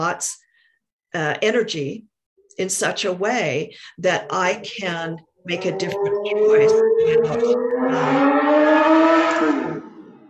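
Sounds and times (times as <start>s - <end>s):
speech: 0.0s - 0.4s, 1.1s - 9.8s
motorcycle engine droning past: 5.6s - 10.2s.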